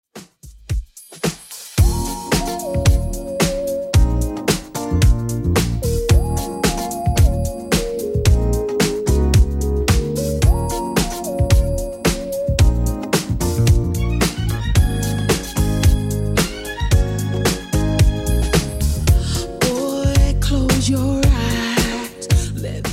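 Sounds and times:
90s drum beat at 111 bpm: 0.1 - 22.9.

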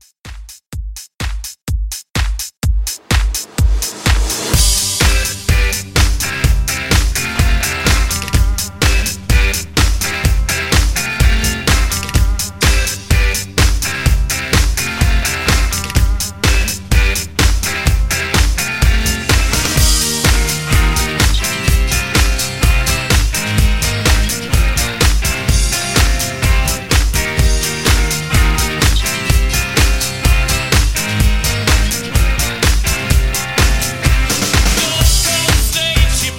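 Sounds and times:
1970s classic rock drums: 2.8 - 36.3.

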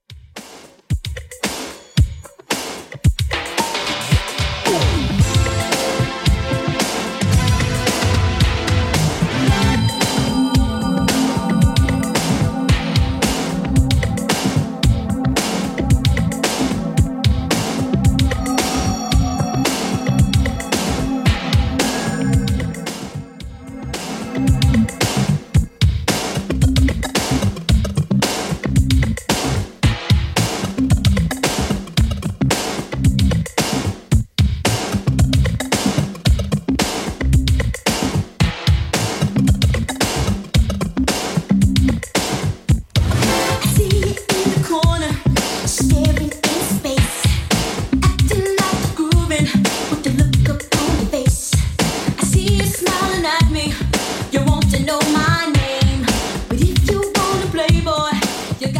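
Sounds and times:
80s drum beat: 0.1 - 58.7.

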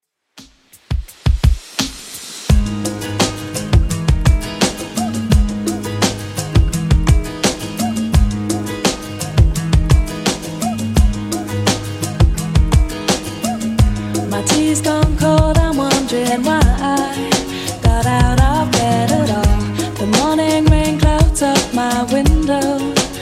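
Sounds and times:
90s drum beat: 0.4 - 23.2.

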